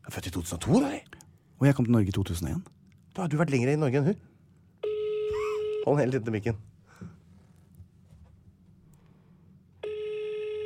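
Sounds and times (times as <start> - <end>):
speech: 0.0 - 4.3, 5.8 - 6.6
outgoing call telephone ringing tone, steady electronic beep: 4.8 - 6.0, 9.8 - 10.6.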